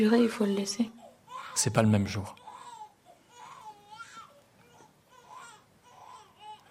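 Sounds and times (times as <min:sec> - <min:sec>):
speech: 0:00.0 - 0:01.0, 0:01.6 - 0:02.4
baby crying: 0:01.0 - 0:01.7, 0:02.4 - 0:06.6.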